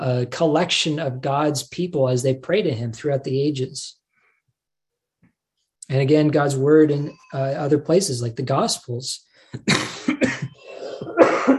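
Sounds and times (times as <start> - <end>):
speech: 0.0 - 4.0, 5.9 - 10.5
harsh coughs: 9.6 - 11.5.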